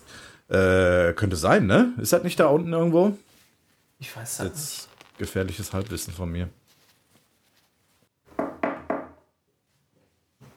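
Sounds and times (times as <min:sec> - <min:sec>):
speech: 0:00.5 - 0:03.3, 0:04.0 - 0:06.6
firm knocking on a door: 0:08.4 - 0:09.2.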